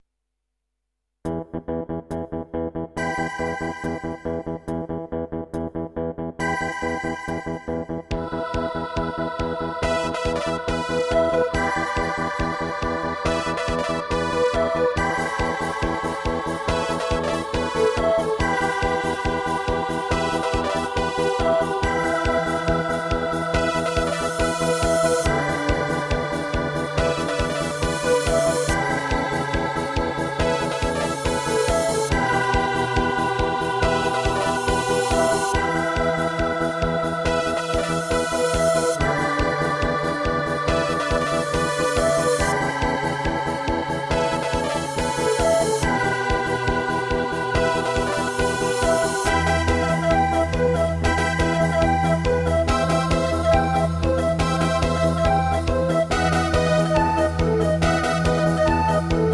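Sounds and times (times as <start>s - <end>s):
instrumental music: 1.3s - 59.3s.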